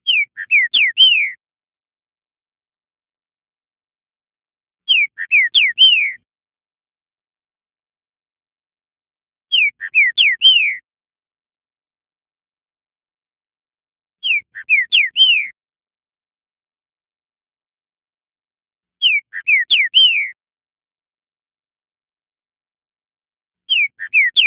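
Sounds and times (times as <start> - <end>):
bird song: 0.0 - 1.4, 4.4 - 6.3, 8.5 - 10.9, 13.2 - 15.6, 19.0 - 20.4, 23.6 - 24.4.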